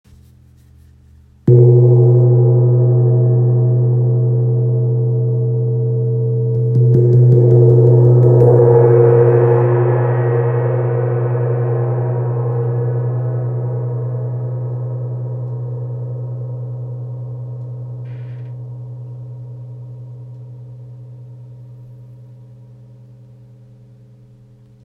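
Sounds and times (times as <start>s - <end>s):
55cm wind gong: 1.5s - 19.0s.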